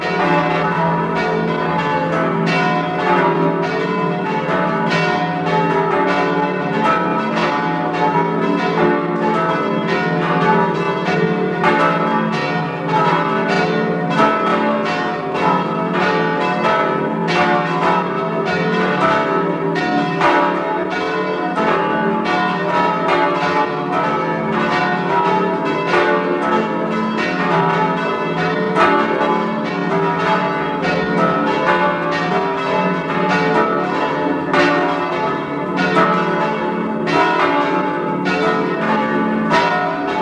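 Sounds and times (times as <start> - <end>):
parish church bells ringing in a full peal in Tyrol: 0.0 - 40.2.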